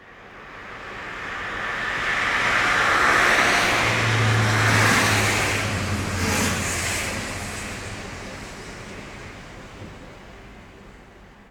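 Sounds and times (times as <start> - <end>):
car on highway: 0.0 - 11.4
street traffic: 0.0 - 11.4.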